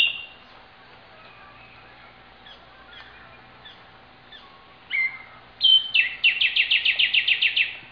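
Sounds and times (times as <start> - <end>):
bird phrase of sharp whistled notes breaking into a rapid trill: 0.0 - 0.4, 2.4 - 7.9
bird chirping: 0.0 - 0.6, 1.4 - 7.9.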